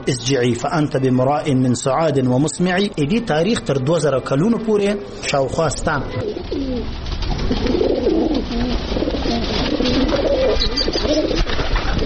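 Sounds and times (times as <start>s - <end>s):
speech: 0.0s - 9.7s
pigeons cooing: 3.3s - 12.0s.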